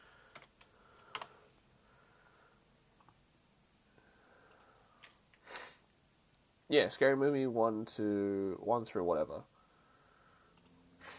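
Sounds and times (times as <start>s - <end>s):
typing on a computer keyboard: 0.3s - 1.4s, 4.4s - 5.2s
speech: 6.7s - 9.5s.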